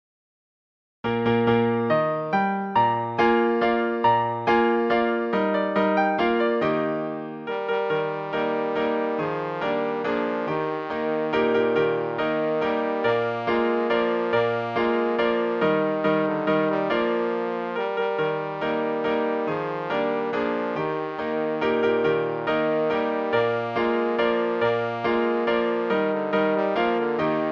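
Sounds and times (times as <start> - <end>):
piano: 1.0 - 27.5
trombone playing a recital piece: 3.9 - 27.5.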